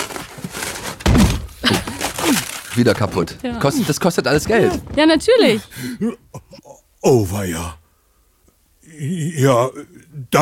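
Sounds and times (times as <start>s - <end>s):
faint rustling: 0.0s - 5.7s
door being rammed in: 0.8s - 5.5s
speech: 2.8s - 7.8s, 9.0s - 10.4s.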